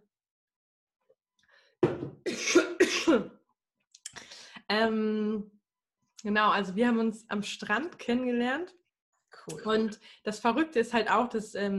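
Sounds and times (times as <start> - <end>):
person coughing harshly: 2.3 - 3.3
speech: 4.7 - 5.6, 6.2 - 8.8, 9.4 - 11.7.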